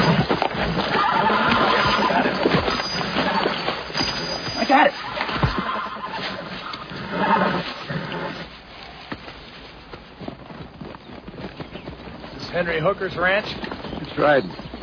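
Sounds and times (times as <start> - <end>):
horse whinnying: 0.0 - 9.1
speech: 12.8 - 14.6.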